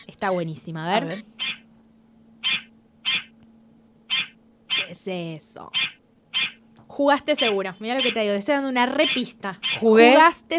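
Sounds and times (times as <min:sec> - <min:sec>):
speech: 0:00.0 - 0:01.6, 0:04.9 - 0:05.9, 0:07.0 - 0:10.5
faint steady hum: 0:00.0 - 0:10.5
goose honking: 0:01.0 - 0:01.6, 0:02.4 - 0:03.3, 0:04.1 - 0:04.9, 0:05.8 - 0:06.6, 0:07.4 - 0:08.3.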